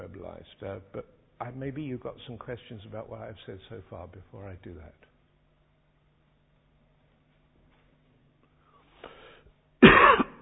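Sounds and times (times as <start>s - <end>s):
speech: 0.3s - 5.1s
harsh cough through a microphone and PA: 9.8s - 10.4s
person clearing throat through microphone and PA: 9.8s - 10.4s.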